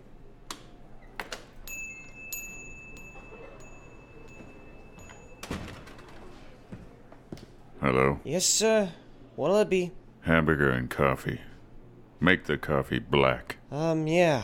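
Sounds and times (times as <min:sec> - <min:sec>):
thin ringing tone: 0:01.6 - 0:06.4
door opening with sharp clicks and knocks as a customer enters: 0:05.0 - 0:06.6
solid thump of a door closing: 0:05.4 - 0:06.1
speech: 0:07.8 - 0:11.5, 0:12.2 - 0:14.4.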